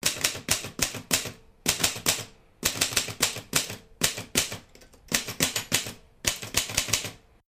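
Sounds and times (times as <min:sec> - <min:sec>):
typewriter typing: 0:00.0 - 0:07.2.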